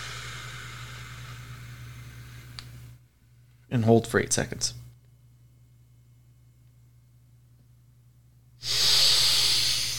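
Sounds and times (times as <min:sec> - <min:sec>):
person breathing in through the nose and out through the mouth in a guided breathing exercise: 0:00.0 - 0:03.6, 0:08.6 - 0:09.9
speech: 0:03.7 - 0:04.8.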